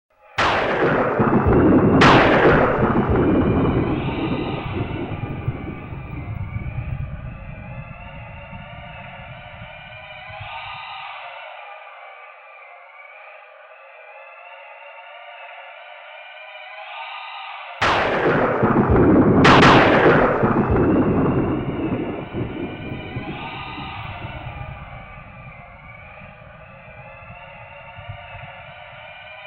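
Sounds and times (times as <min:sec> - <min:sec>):
planet thunder in the background: 0:00.4 - 0:10.9, 0:17.8 - 0:29.4.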